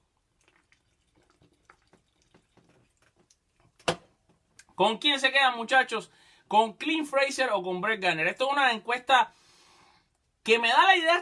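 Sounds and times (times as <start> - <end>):
person sipping water: 0.0 - 3.8
speech: 4.8 - 9.4, 10.4 - 11.2.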